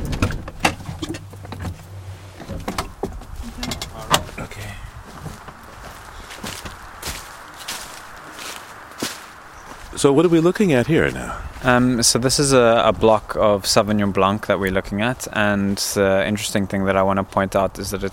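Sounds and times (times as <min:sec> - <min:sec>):
car doors clunking: 0:00.0 - 0:04.5
footsteps crunching on a vineyard farm: 0:00.8 - 0:17.7
speech: 0:10.0 - 0:18.1.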